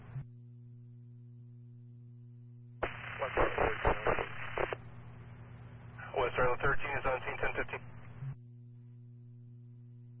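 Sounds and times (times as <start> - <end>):
low steady electrical hum: 0.0 - 10.1
radio static on a dispatch radio channel: 2.8 - 4.8, 6.0 - 8.1
speech: 6.3 - 8.0.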